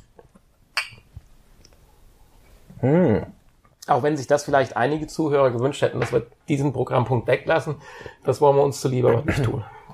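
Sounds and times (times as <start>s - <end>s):
glasses clinking in a toast: 0.8s - 1.1s
speech: 2.8s - 3.3s, 3.9s - 9.8s.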